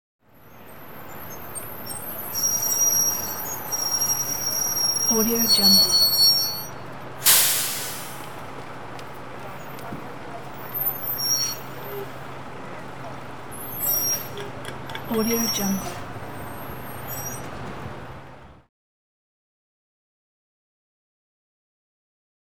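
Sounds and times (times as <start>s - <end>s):
city bus brakes squealing: 0.3s - 8.4s, 9.6s - 18.7s.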